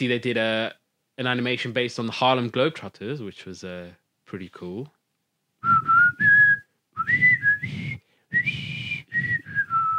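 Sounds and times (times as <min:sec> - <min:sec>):
speech: 0:00.0 - 0:05.0
person whistling a tune: 0:05.6 - 0:09.9.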